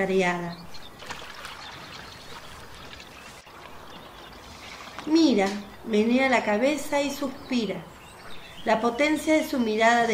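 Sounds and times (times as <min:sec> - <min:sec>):
speech: 0:00.0 - 0:00.8, 0:05.0 - 0:07.9, 0:08.6 - 0:10.1
water pouring and splashing from a vessel: 0:01.0 - 0:05.1.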